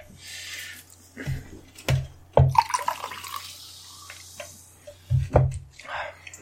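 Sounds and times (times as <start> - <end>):
soda being poured with a hiss: 2.5 - 4.3.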